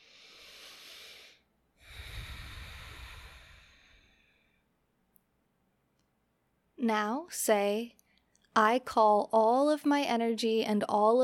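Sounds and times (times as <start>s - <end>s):
slow deep breaths during a relaxation exercise: 0.0s - 4.8s
speech: 6.8s - 8.0s, 8.6s - 11.2s.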